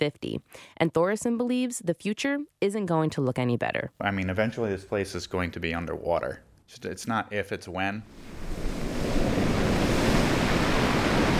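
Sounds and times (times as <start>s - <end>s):
speech: 0.0s - 8.8s
wind-driven waves washing onto a sandy beach: 8.1s - 11.3s
gusting wind buffeting the microphone: 8.2s - 11.3s.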